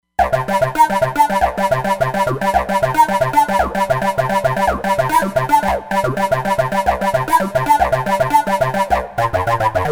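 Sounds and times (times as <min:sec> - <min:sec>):
TB wah sound on a Roland Fantom XR synthesizer: 0:00.2 - 0:09.9.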